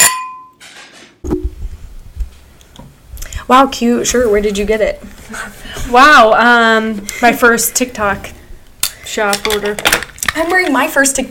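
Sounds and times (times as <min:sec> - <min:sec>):
glasses clinking in a toast: 0:00.0 - 0:00.6
speech: 0:03.5 - 0:08.4, 0:09.1 - 0:11.3.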